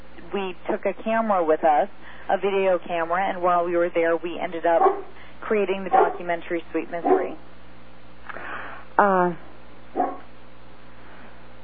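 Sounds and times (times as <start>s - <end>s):
faint hum: 0.0s - 11.6s
speech: 0.3s - 7.5s, 9.0s - 10.2s
dogs barking: 4.7s - 5.2s, 5.8s - 7.5s, 9.9s - 10.3s.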